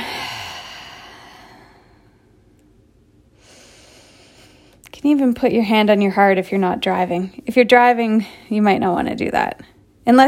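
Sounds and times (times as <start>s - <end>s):
deep exhale of breath: 0.0s - 2.4s, 3.4s - 4.8s
speech: 5.0s - 10.2s.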